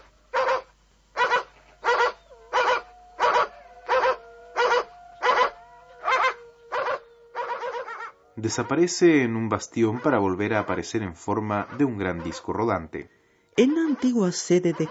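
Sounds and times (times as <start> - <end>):
dog barking: 0.3 - 8.8, 9.8 - 10.8, 11.6 - 12.6, 13.8 - 14.8
dog whimpering whine: 1.8 - 8.1
speech: 8.4 - 14.8.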